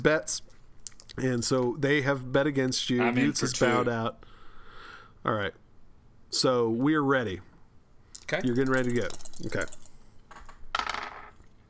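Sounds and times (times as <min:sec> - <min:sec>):
speech: 0:00.0 - 0:00.5, 0:01.2 - 0:04.3, 0:05.2 - 0:05.6, 0:06.3 - 0:07.5, 0:08.3 - 0:09.8
dice clattering across a hard tabletop: 0:08.2 - 0:11.6.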